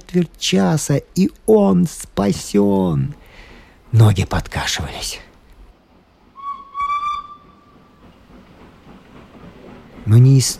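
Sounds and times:
train approaching on rails from across a bridge: 0.0 - 10.5
speech: 0.1 - 3.2, 3.9 - 5.3, 10.1 - 10.5
train whistle blowing: 6.4 - 8.0.

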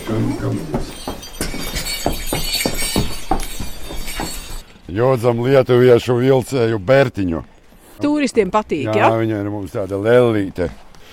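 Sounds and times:
small bells jingling: 0.0 - 5.3
speech: 0.1 - 1.1, 4.9 - 10.8.

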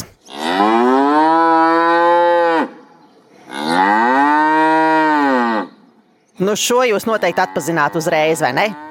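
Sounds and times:
cow mooing: 0.2 - 2.8, 3.4 - 5.8, 7.2 - 8.8
speech: 6.4 - 8.8.

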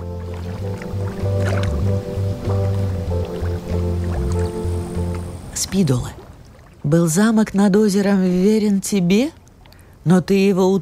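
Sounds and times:
deep steady underwater droning hum in a lake: 0.0 - 6.8
soft underwater bubbling: 0.0 - 7.5
lake water gurgling underwater: 0.0 - 9.9
speech: 5.7 - 6.2, 6.8 - 9.4, 10.0 - 10.7.

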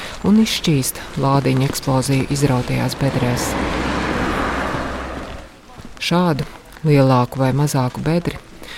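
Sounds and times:
rain falling: 0.0 - 8.7
speech: 0.2 - 4.0, 6.0 - 8.7.

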